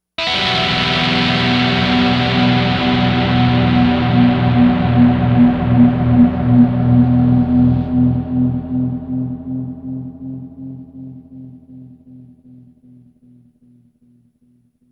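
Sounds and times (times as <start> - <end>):
dirty guitar: 0.2 - 12.0.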